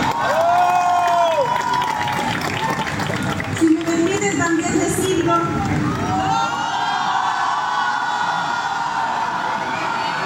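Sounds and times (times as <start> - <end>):
large crowd cheering and applauding: 0.0 - 10.2.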